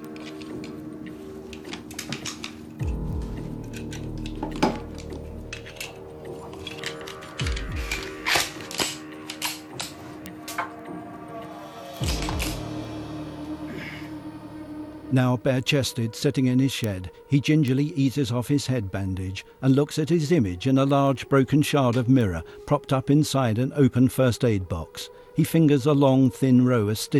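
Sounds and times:
metallic clicks and rattles from handling a shotgun and Colt 45 pistol magazine: 0.0 - 10.7
speech: 15.2 - 27.1.

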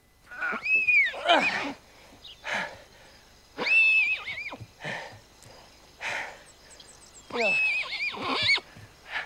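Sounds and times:
newborn colt whinnying high and quavering in a grassy field: 0.3 - 1.8, 3.6 - 4.6, 7.3 - 8.7.

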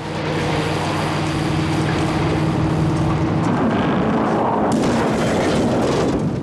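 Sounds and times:
car engine roaring: 0.0 - 6.4
car crashing into a stationary vehicle: 3.6 - 6.4.

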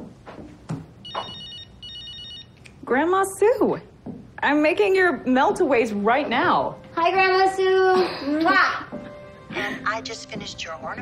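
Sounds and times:
mobile phone ringing with a high electronic tone: 1.0 - 2.6
speech: 2.9 - 8.9, 9.6 - 11.0.

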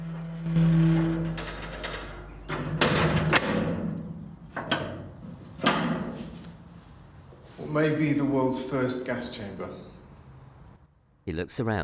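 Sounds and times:
low groaning hinge of heavy metal door: 0.0 - 3.8
heavy metal door swinging shut and latching: 0.9 - 6.2
speech: 7.8 - 9.9, 11.3 - 11.8.

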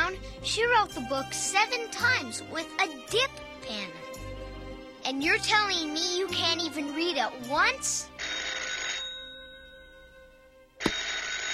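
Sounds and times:
speech: 0.4 - 4.2, 5.0 - 8.4
old-style telephone bell ringing: 8.2 - 10.1, 10.8 - 11.5.

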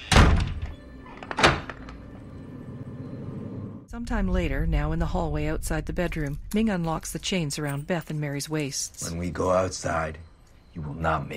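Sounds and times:
closet door slamming shut: 0.0 - 2.0
speech: 3.9 - 11.3.

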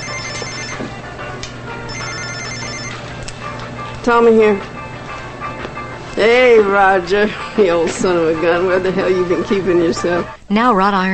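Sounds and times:
cell phone ringing as pulled from a pocket: 0.0 - 0.9, 1.8 - 3.1
speech: 4.0 - 4.7, 6.2 - 11.1.

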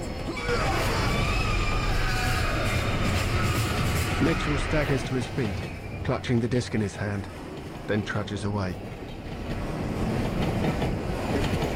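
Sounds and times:
train pulling into a station beside the platform: 0.0 - 11.7
speech: 4.2 - 8.9.

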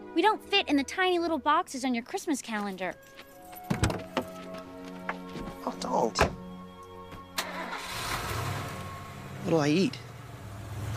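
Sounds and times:
speech: 0.2 - 3.3, 5.8 - 6.4, 9.4 - 10.0
car engine starting: 7.3 - 10.9.

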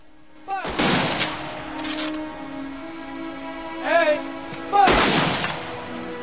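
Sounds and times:
rifle volley at a military funeral in a rainy military cemetery: 0.6 - 2.3, 4.5 - 6.0.

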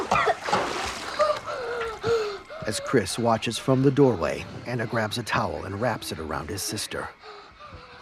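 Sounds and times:
bathtub water splashing as a child is lifted out: 0.0 - 2.4
speech: 2.7 - 7.4.

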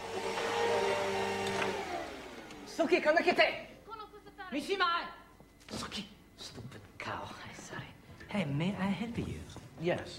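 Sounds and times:
vacuum cleaner running on the stairs of a wedding chapel lobby: 0.0 - 3.4
speech: 2.8 - 3.7, 4.5 - 5.2, 8.3 - 10.1.

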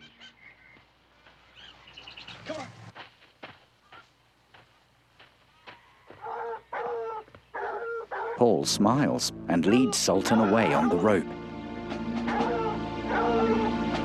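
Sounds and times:
birds chirping: 0.0 - 2.9, 5.5 - 11.2, 12.2 - 13.9
pack of dogs barking while running across a rocky slope: 6.2 - 8.4, 12.3 - 13.8
speech: 8.4 - 11.4.

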